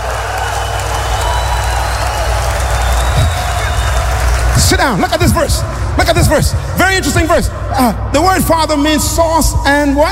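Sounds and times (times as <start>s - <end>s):
audience applause and cheering: 0.0s - 7.3s
speech: 4.7s - 10.0s.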